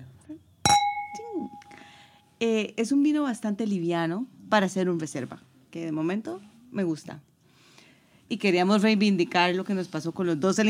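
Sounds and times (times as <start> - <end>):
wine glasses clinking in a toast: 0.7 - 1.8
speech: 2.4 - 7.3, 8.3 - 10.6.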